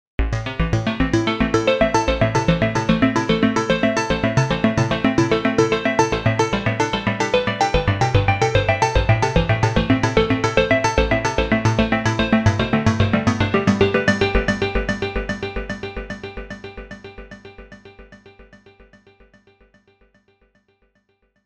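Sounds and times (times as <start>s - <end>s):
closed pulse arpeggio: 0.2s - 17.0s.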